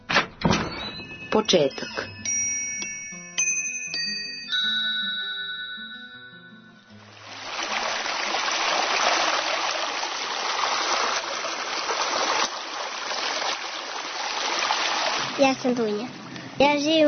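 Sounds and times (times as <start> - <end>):
short tinkling chime melody: 0.6 - 7.1
speech: 1.4 - 2.1, 15.5 - 17.0
flowing river water: 7.0 - 16.6.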